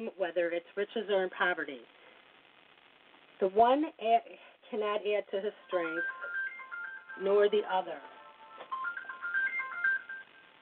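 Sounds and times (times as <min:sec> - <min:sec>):
speech: 0:00.0 - 0:02.0, 0:03.4 - 0:06.2, 0:07.2 - 0:08.2
electronic phone ringtone: 0:05.6 - 0:10.5.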